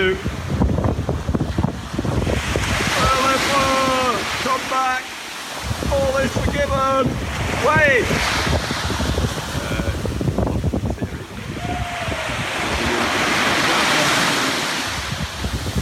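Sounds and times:
ocean waves washing onto a beach: 0.0s - 15.7s
wind buffeting the microphone: 0.0s - 15.7s
speech: 6.2s - 8.8s.

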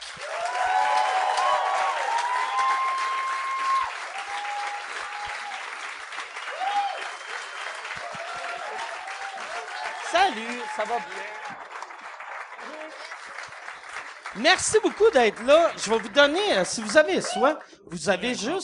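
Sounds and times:
audience applause: 0.0s - 18.2s
audience cheers and whistles: 0.2s - 11.6s
speech: 10.2s - 11.7s, 14.4s - 18.6s.

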